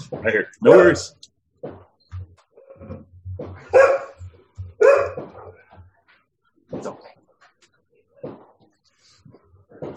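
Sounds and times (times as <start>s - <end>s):
speech: 0.1s - 1.8s
pet dog barking: 3.6s - 5.7s.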